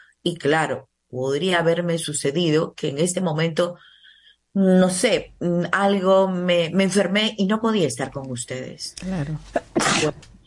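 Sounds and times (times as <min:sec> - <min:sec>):
speech: 0:00.2 - 0:03.9, 0:04.5 - 0:10.3
sneeze: 0:09.7 - 0:10.2.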